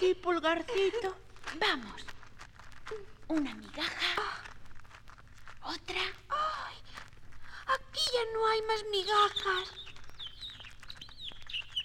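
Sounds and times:
speech: 0.0 - 2.1, 2.9 - 4.5, 5.6 - 7.0, 7.7 - 9.8
faint low hum: 0.0 - 11.8
birds chirping: 8.3 - 11.8.

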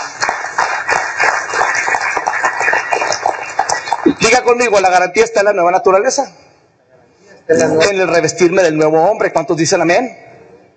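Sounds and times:
crowd clapping: 0.0 - 4.8
speech: 4.3 - 6.4, 7.5 - 10.3.

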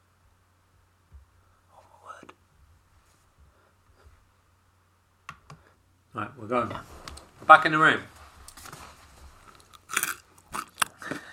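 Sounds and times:
speech: 6.2 - 6.9, 7.5 - 8.1
soft chewing: 8.4 - 11.3
crunching on sardines on toast: 9.5 - 11.3.

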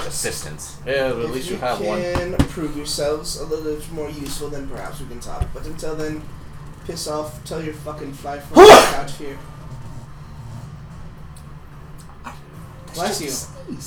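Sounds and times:
speech: 0.1 - 9.5, 13.0 - 13.8
sharp loud sneeze: 8.6 - 9.1.

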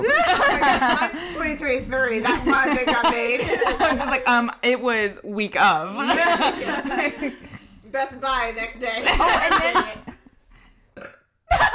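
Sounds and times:
laughter: 0.0 - 4.3, 6.0 - 7.7, 8.9 - 10.3
speech: 0.8 - 10.1
person burping: 10.9 - 11.6.

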